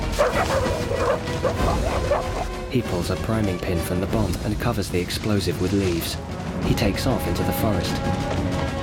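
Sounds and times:
dogs barking and yelping excitedly: 0.1 - 2.5
speech: 1.1 - 8.6.

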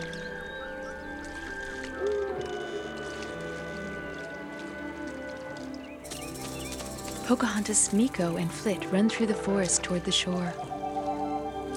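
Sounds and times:
animal cries in a forest: 0.0 - 5.4
airy wash of wind in a forest: 0.0 - 11.7
speech: 7.3 - 10.7.

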